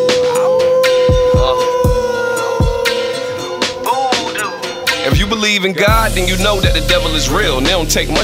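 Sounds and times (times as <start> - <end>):
voice imitating a howl: 0.0 - 4.9
busy musical background: 0.0 - 8.2
deep thumping beats: 1.1 - 3.0, 3.6 - 8.2
speech: 5.4 - 8.2.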